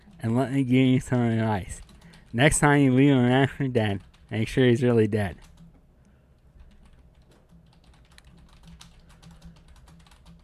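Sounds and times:
speech: 0:00.2 - 0:05.5
typing on a computer keyboard: 0:01.1 - 0:02.5, 0:03.8 - 0:04.6, 0:05.3 - 0:05.8, 0:06.6 - 0:10.4.

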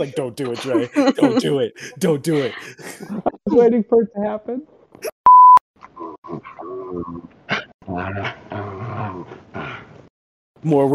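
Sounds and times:
laughter: 0:00.0 - 0:03.6
speech: 0:00.0 - 0:05.1, 0:06.0 - 0:08.7, 0:10.6 - 0:10.9
short electronic beep: 0:05.3 - 0:05.6
dog growling and barking: 0:06.4 - 0:09.9.

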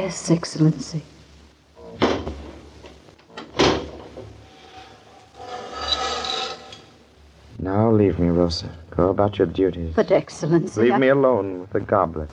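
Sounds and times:
speech: 0:00.0 - 0:01.1, 0:07.6 - 0:12.3
wooden windows thumping shut: 0:02.0 - 0:02.6, 0:03.4 - 0:04.3
blinds being drawn: 0:03.5 - 0:07.0.

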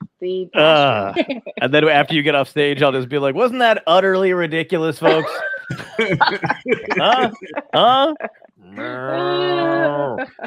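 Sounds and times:
speech: 0:00.2 - 0:09.5
person imitating a cow mooing: 0:00.6 - 0:01.2, 0:08.6 - 0:10.2
laughter: 0:00.8 - 0:01.6, 0:05.0 - 0:08.5, 0:09.5 - 0:10.4.

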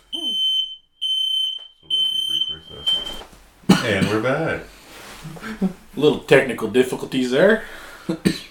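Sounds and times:
smoke alarm beeping in piercing high-pitched bursts: 0:00.0 - 0:03.3
speech: 0:03.8 - 0:08.4.

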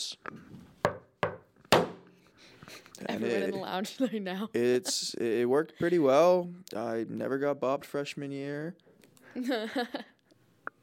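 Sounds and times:
speech: 0:00.0 - 0:00.5, 0:03.0 - 0:10.1
patterned secret knock on wood: 0:00.9 - 0:02.0
bright slap-like hit on wood: 0:00.9 - 0:02.1.

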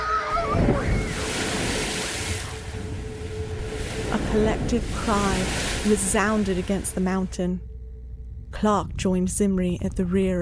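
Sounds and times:
waves of rising tide water sweeping in: 0:00.4 - 0:07.3
speech: 0:04.4 - 0:07.7, 0:08.6 - 0:10.4.

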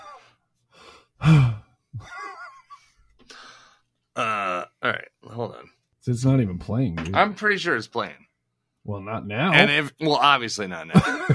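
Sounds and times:
speech: 0:01.2 - 0:02.1, 0:06.0 - 0:11.3
deep breaths picked up closely by a microphone: 0:03.2 - 0:03.9
laughter: 0:10.9 - 0:11.3.

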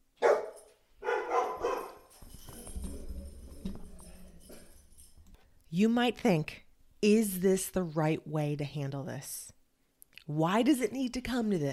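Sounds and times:
dog barking: 0:00.2 - 0:02.1
speech: 0:05.8 - 0:09.5, 0:10.3 - 0:11.7.

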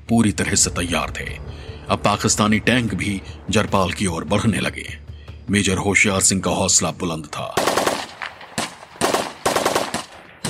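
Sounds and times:
speech: 0:00.1 - 0:08.0
enemy machine gun fire in a war battle: 0:07.6 - 0:10.4.

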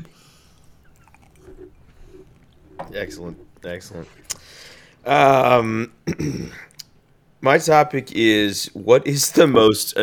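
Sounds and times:
someone chewing dry potpourri straight from the bag: 0:00.5 - 0:02.7
speech: 0:02.9 - 0:04.4, 0:05.0 - 0:06.7, 0:07.4 - 0:10.0.

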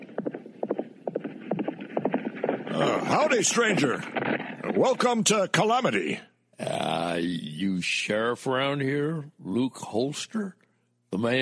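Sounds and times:
horse hooves clip-clopping along a town street: 0:00.0 - 0:05.3
speech: 0:02.8 - 0:06.3, 0:07.2 - 0:11.3.

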